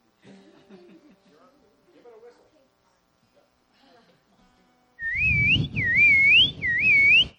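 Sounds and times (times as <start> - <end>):
laughter: 0.2 - 1.5
piercing human whistle to call guinea pigs: 5.0 - 7.3.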